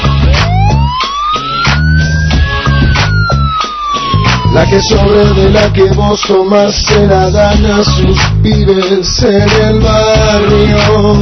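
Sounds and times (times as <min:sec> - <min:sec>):
ambulance siren wailing: 0:00.0 - 0:06.2
thumping musical beat: 0:00.0 - 0:11.2
speech: 0:04.6 - 0:11.2.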